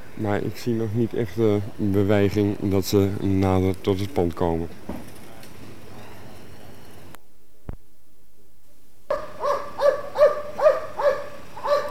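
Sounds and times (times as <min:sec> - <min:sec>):
hiss: 0:00.0 - 0:11.9
speech: 0:00.2 - 0:05.1
police dogs handled by riot police barking: 0:09.1 - 0:11.9.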